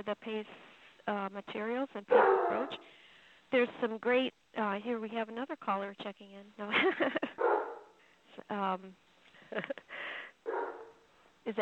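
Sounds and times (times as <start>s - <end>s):
speech: 0.0s - 7.5s, 8.4s - 10.1s, 11.4s - 11.6s
dog barking: 2.1s - 2.9s, 7.4s - 8.0s, 10.5s - 11.0s.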